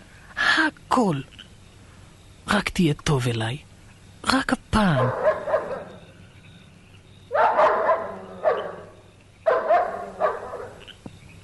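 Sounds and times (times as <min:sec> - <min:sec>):
low hum: 0:00.0 - 0:11.4
speech: 0:00.7 - 0:01.4, 0:02.5 - 0:05.3
dog barking: 0:05.0 - 0:06.0, 0:07.3 - 0:10.9.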